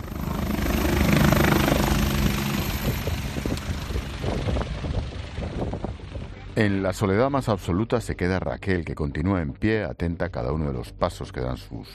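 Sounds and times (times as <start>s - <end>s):
helicopter rotor and engine roar taking off and climbing: 0.0s - 7.2s
wind buffeting the microphone: 2.2s - 6.6s
speech: 6.6s - 11.9s.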